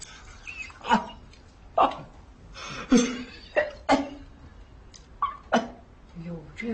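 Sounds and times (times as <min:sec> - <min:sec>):
man coughing harshly: 0:02.8 - 0:04.2.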